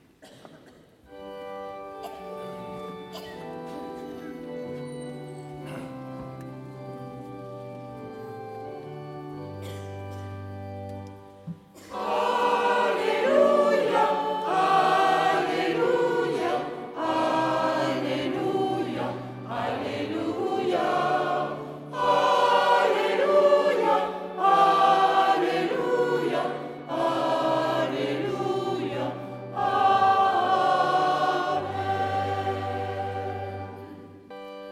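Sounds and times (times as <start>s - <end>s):
choir singing: 11.7s - 34.6s.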